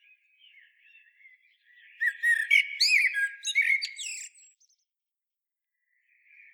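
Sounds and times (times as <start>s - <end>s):
common blackbird singing, Turdus merula: 0.0s - 4.8s.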